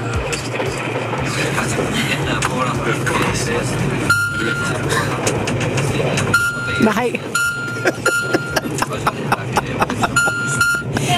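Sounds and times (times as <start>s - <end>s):
rumbling clattering background: 0.0s - 11.1s
laughter: 1.3s - 3.6s, 4.5s - 5.6s, 7.6s - 11.1s
thin steady electronic beep from a train loudspeaker system: 4.0s - 4.9s, 6.3s - 8.7s, 10.1s - 11.0s
speech: 6.8s - 8.1s.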